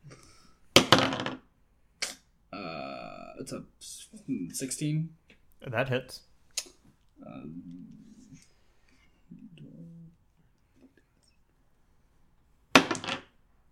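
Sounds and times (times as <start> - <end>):
dice tumbling across a table: 0.8 - 1.5, 12.8 - 13.4
speech: 3.4 - 6.3
dice clattering into other dice: 12.8 - 13.3.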